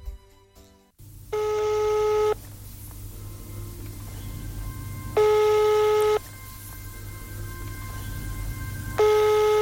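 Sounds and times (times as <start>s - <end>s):
steady low hum of noise: 1.0s - 9.6s
telephone ringing through an earpiece: 1.4s - 2.4s, 5.1s - 6.2s, 7.9s - 9.6s.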